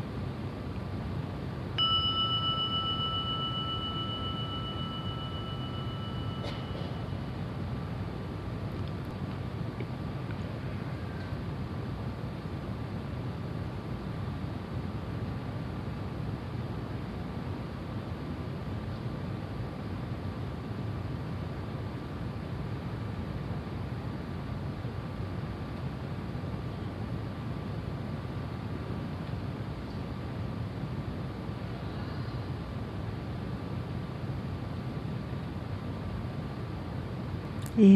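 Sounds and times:
steady low hiss and rumble: 0.0s - 37.9s
meditation gong struck and ringing out: 1.8s - 7.4s
speech: 37.8s - 37.9s.

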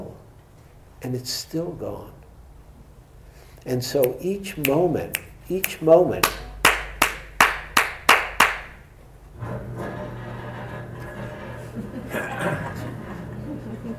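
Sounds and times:
speech: 1.0s - 2.2s, 3.6s - 6.5s
sharp clacks: 4.0s - 8.8s
garage door opening with motor hum and rattling rumble: 9.3s - 12.1s
laughter: 11.6s - 13.9s.

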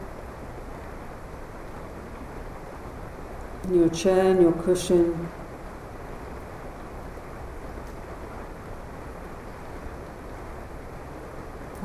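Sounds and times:
steady rain falling: 0.0s - 11.8s
person speaking calmly guiding a seated meditation: 3.6s - 5.3s
speech: 3.6s - 5.4s.

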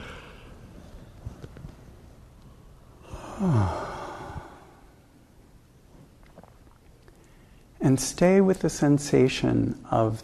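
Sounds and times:
big yawn with deep inhale: 3.0s - 4.9s
speech: 3.4s - 3.8s, 7.9s - 10.2s.

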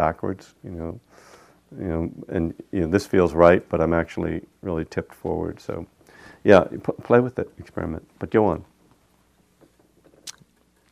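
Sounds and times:
speech: 0.0s - 8.7s
gum chewing: 10.2s - 10.9s
sharp wet mouth smacks: 10.2s - 10.9s.

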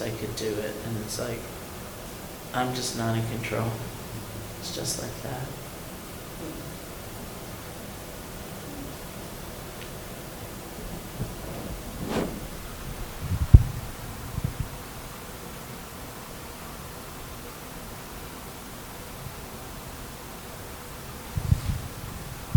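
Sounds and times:
air conditioner running: 0.0s - 22.5s
speech: 0.2s - 1.6s, 2.5s - 4.0s, 4.6s - 5.6s, 6.4s - 6.7s
faint low thumps: 10.1s - 14.6s.

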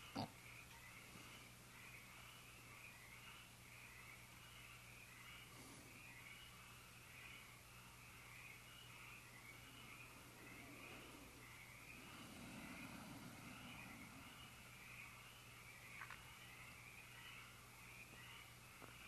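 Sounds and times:
chorus of frogs croaking outdoors: 0.0s - 19.0s
low constant rumble: 6.6s - 18.8s.

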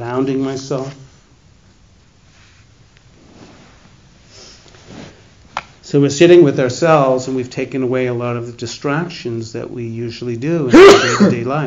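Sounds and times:
speech: 0.2s - 1.0s, 5.9s - 11.6s
person sneezing: 10.7s - 11.4s.

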